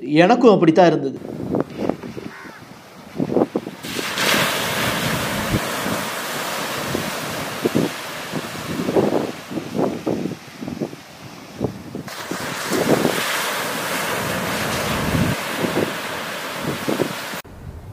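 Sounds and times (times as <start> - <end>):
speech: 0.1 - 1.4
wind buffeting the microphone: 1.2 - 17.9
sea waves washing onto the shore at Dhanushkodi: 1.3 - 17.4
sharp bird caws: 1.8 - 2.8.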